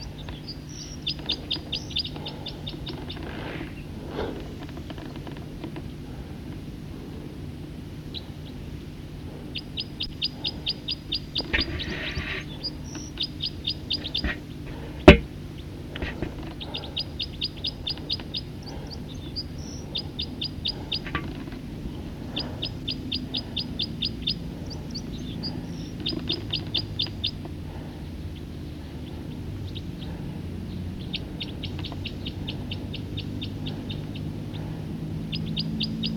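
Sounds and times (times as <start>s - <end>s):
bird song trills: 0.0s - 4.8s, 8.1s - 36.1s
low steady hum: 0.0s - 36.1s.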